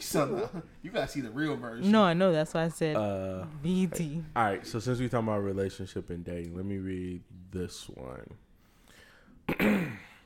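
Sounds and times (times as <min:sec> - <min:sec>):
speech: 0:00.0 - 0:08.4, 0:09.5 - 0:10.1
throat clearing: 0:09.5 - 0:10.2.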